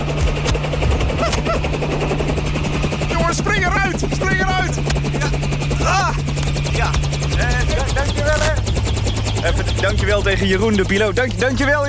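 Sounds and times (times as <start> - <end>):
large helicopter landing in a parking lot, rotor thudding and engine roar: 0.0 - 11.8
speech: 9.8 - 11.8.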